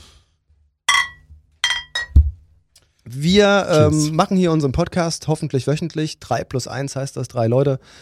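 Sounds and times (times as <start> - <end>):
glass beer bottles clinking in a toast: 0.9 - 2.2
speech: 3.0 - 8.0.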